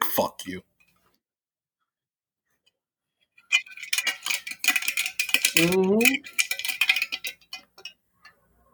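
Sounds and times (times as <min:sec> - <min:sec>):
speech: 0:00.2 - 0:00.7, 0:05.6 - 0:06.4
pots and metal kitchenware clanking: 0:03.4 - 0:08.7.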